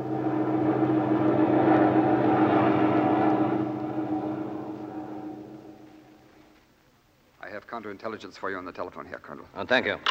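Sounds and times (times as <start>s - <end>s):
airplane engine drone of a lone plane in flight: 0.0s - 6.5s
speech: 7.8s - 10.0s.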